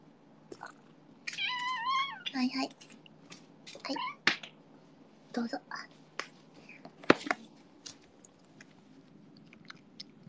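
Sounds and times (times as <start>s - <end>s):
pet cat meowing eagerly for a treat: 1.3s - 2.3s
speech: 2.3s - 3.0s, 3.9s - 4.2s, 5.3s - 5.9s.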